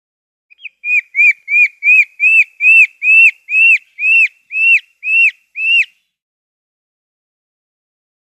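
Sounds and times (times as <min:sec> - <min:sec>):
ringtail calling with high whistled arching chirps: 0:00.5 - 0:06.0.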